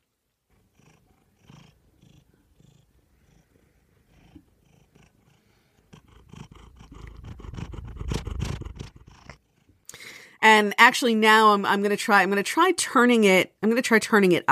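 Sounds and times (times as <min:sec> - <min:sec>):
domestic cat purring: 0:00.5 - 0:09.9
speech: 0:10.4 - 0:14.5.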